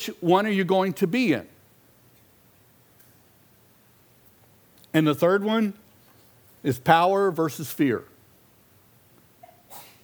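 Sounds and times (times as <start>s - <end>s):
speech: 0.0s - 1.5s, 5.0s - 5.8s, 6.6s - 8.1s
sneeze: 9.4s - 10.0s.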